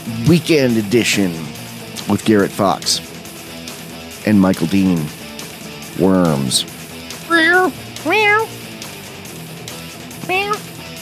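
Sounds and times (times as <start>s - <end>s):
speech: 0.1s - 3.1s, 4.2s - 5.2s, 6.0s - 6.7s
cat meowing: 7.2s - 8.6s, 10.2s - 10.7s.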